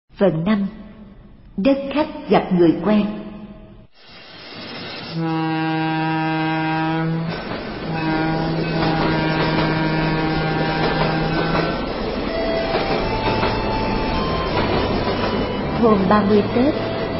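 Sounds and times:
speech: 0.2 - 0.8, 1.6 - 3.2, 5.2 - 6.3, 15.8 - 16.8
passenger train rumbling rail noise arriving at a station: 3.9 - 17.1
passenger train tonal blasts or squeals arriving at a station: 4.4 - 17.1.

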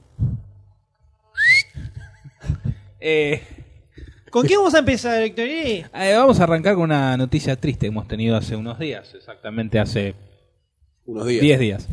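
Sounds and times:
person whistling: 1.4 - 1.9
speech: 3.0 - 3.6, 4.3 - 10.3, 11.1 - 11.9.

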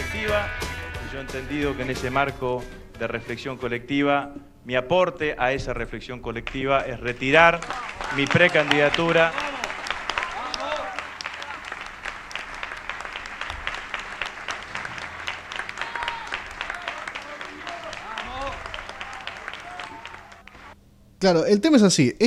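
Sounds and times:
speech: 0.2 - 9.5, 21.2 - 22.2
crowd applauding after a politician announces withdrawal of a pre-candidacy: 7.0 - 20.8.

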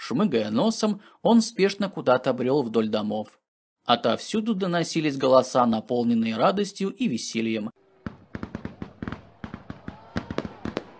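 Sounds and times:
speech: 0.1 - 7.8
fireworks launched in a neighbouring courtyard on a winter night: 7.8 - 10.9.

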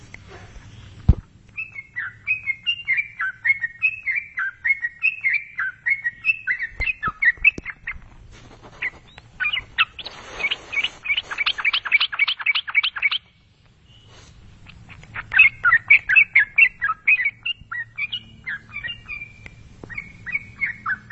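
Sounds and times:
yellow-vented bulbul song: 0.0 - 21.1
burst of scratchy noise: 7.9 - 12.2.

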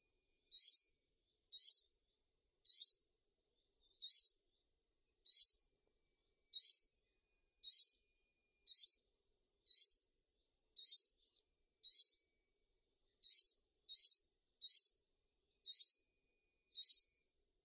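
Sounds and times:
brown-throated sunbird piercing high chip calls: 0.5 - 0.9, 1.5 - 1.9, 2.6 - 3.0, 3.8 - 4.4, 5.2 - 5.6, 6.5 - 6.9, 7.6 - 8.0, 8.7 - 9.0, 9.7 - 10.0, 10.8 - 12.2, 13.2 - 15.0, 15.6 - 16.0, 16.8 - 17.1.

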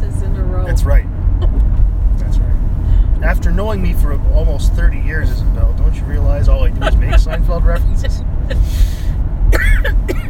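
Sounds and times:
steady low rumble: 0.0 - 10.2
speech: 3.6 - 9.0
laughter: 6.6 - 8.8
short raspy coughs: 9.5 - 10.2.

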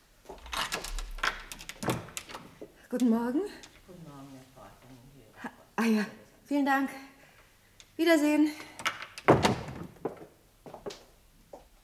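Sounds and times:
door being opened with the security chain on: 0.4 - 3.9
speech: 2.9 - 3.7, 5.8 - 7.1, 8.0 - 8.7.

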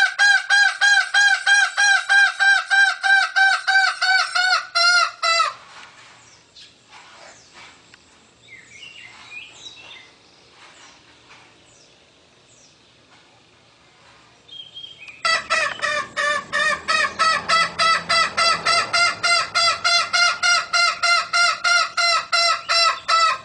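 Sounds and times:
green junglefowl harsh clucks: 0.0 - 5.7, 15.1 - 23.4.

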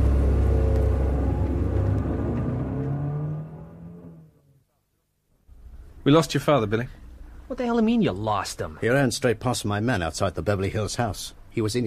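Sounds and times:
car engine roaring as the car drives off in Beverly Hills: 0.0 - 4.4
speech: 6.0 - 11.8.

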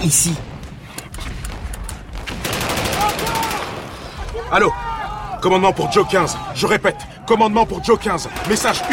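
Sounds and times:
speech: 0.0 - 0.5, 4.5 - 8.9
German machine guns firing in a World War I attack: 1.5 - 3.8.

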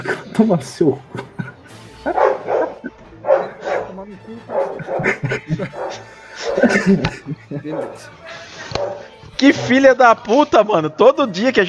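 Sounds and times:
speech: 0.0 - 1.2, 4.1 - 8.2, 8.8 - 11.6
laughter: 1.0 - 3.8, 4.5 - 9.1
dog barking with short yelping barks: 2.1 - 7.0, 7.7 - 9.1.

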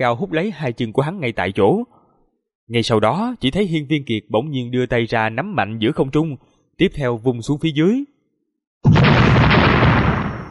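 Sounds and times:
speech: 0.0 - 2.0, 2.7 - 8.1
loud explosion sound effect: 8.9 - 10.4.

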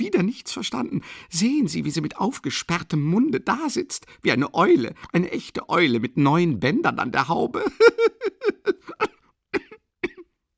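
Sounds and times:
speech: 0.0 - 9.1
sick woman laughing: 7.6 - 9.8
sick woman coughing: 8.6 - 10.3.

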